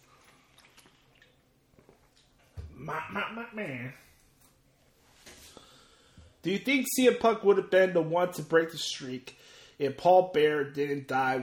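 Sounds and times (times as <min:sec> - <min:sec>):
person sipping and swallowing water: 0:00.0 - 0:02.4
speech: 0:02.9 - 0:04.1, 0:06.4 - 0:11.4.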